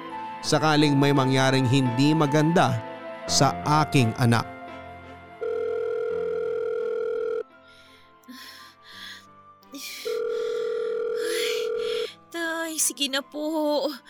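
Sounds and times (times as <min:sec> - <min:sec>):
speech: 0:00.4 - 0:04.5, 0:13.1 - 0:14.0
phone ringback tone while calling: 0:05.4 - 0:07.5, 0:09.8 - 0:12.2.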